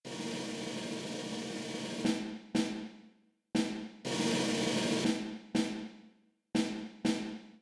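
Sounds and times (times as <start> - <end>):
snare drum: 0.0 - 7.5.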